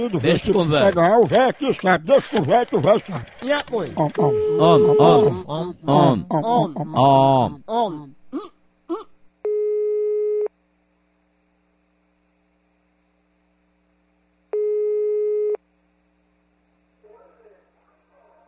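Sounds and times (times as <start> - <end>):
laughter: 0.0 - 8.2
speech: 0.0 - 8.5
faint mains hum: 0.0 - 18.4
telephone busy signal while placing a call: 4.2 - 5.4, 9.5 - 10.5, 14.6 - 15.6.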